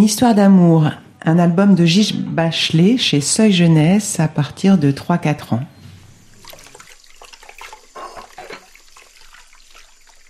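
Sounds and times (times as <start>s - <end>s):
speech: 0.0s - 5.7s
water gurgling and trickling in a sink: 6.2s - 10.2s.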